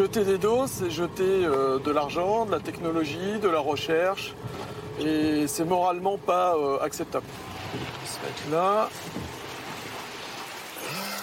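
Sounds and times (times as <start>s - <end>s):
speech: 0.0s - 9.2s
steady rain falling outdoors: 7.4s - 11.2s.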